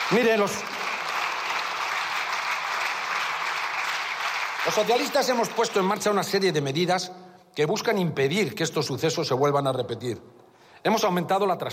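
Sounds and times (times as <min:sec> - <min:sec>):
applause for a politician: 0:00.0 - 0:06.4
speech: 0:00.1 - 0:00.8, 0:04.7 - 0:11.7.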